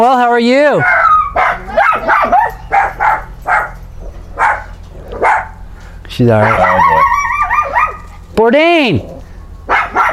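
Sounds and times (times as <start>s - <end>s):
speech: 0.0s - 1.0s, 6.2s - 6.7s, 8.4s - 9.1s
dog barking: 0.8s - 5.6s, 6.4s - 8.2s, 9.7s - 10.1s.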